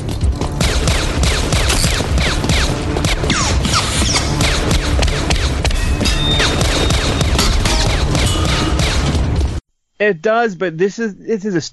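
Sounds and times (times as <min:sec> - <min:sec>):
rapid gunfire in a film action scene: 0:00.5 - 0:05.7, 0:06.4 - 0:09.3
speech: 0:10.0 - 0:11.7.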